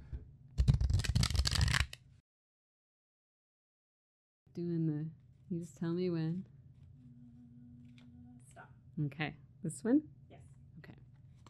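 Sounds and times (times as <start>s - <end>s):
deck of cards riffle-shuffled loudly during a card game: 0.6s - 2.0s
speech: 4.6s - 6.5s, 9.0s - 10.2s.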